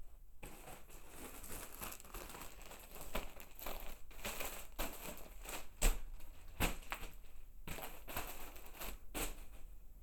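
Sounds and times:
plastic bag: 0.4 - 9.6.

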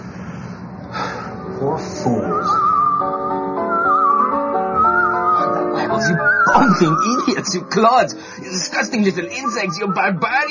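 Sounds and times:
speech: 1.6 - 2.4, 6.8 - 10.4
man whistling a wavering tune: 2.2 - 7.4
laughter: 5.2 - 10.2.

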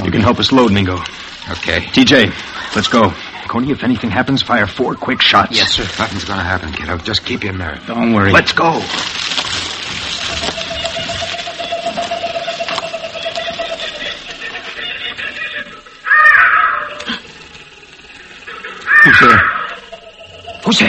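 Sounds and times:
steady hissing outdoor noise: 0.0 - 20.8
speech: 0.2 - 9.2
crows cawing: 16.0 - 17.2, 18.8 - 19.9.

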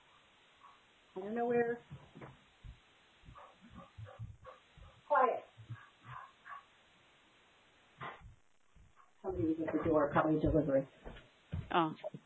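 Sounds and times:
speech: 1.2 - 2.4, 9.2 - 12.2
dog barking: 3.3 - 5.1, 5.7 - 6.8.

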